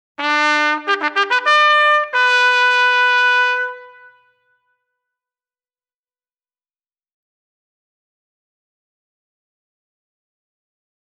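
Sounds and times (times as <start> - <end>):
bugle call: 0.2 - 4.4.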